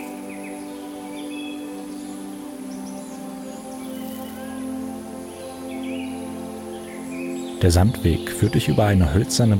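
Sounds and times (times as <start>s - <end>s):
birds chirping and warbling over meadows: 0.0s - 9.5s
insects buzzing in meadows beside a field path: 0.0s - 9.5s
speech: 7.6s - 9.5s.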